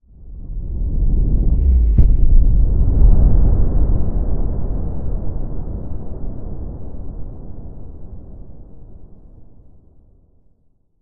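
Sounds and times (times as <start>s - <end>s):
explosion shockwave: 1.0s - 6.8s
crash: 1.3s - 4.0s.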